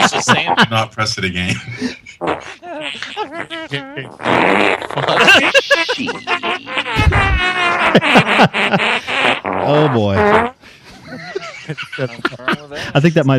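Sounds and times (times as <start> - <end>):
laughter: 0.0 - 10.2, 10.9 - 13.3
speech: 0.1 - 13.3
fart sound effects: 2.2 - 10.6.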